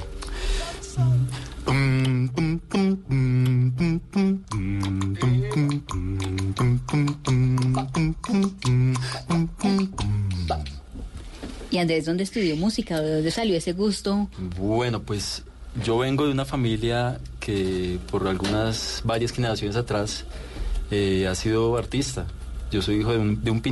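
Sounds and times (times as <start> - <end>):
bass singer of a swing vocal group imitating a walking bass line: 1.0 - 11.0
speech: 11.8 - 23.6.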